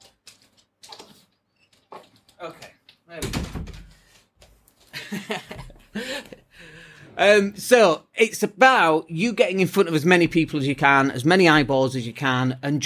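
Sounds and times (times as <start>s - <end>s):
door swinging shut with a solid heavy thud: 3.2s - 4.0s
person laughing: 5.0s - 6.8s
speech: 5.1s - 6.1s, 7.2s - 12.8s.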